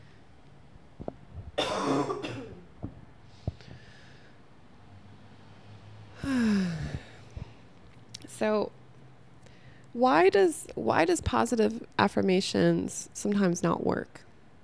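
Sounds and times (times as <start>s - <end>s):
deep deliberate breathing close to the microphone: 3.2s - 4.5s, 5.4s - 7.7s
speech: 8.4s - 8.8s, 10.0s - 14.3s.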